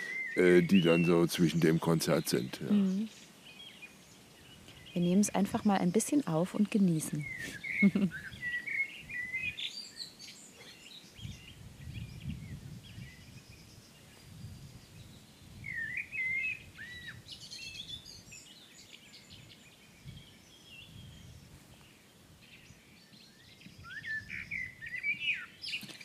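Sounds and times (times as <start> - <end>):
blackbird alarm calls: 0.0 - 4.0, 4.6 - 11.4, 15.6 - 18.3, 23.6 - 26.0
many songbirds singing outdoors: 0.0 - 26.0
speech: 0.4 - 3.2, 5.0 - 8.4
laughter: 7.8 - 8.2.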